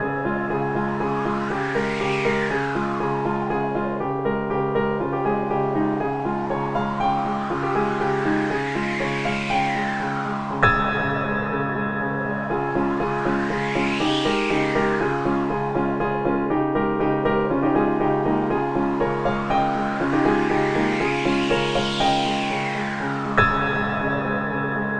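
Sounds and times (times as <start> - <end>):
stormy music: 0.0 - 24.9.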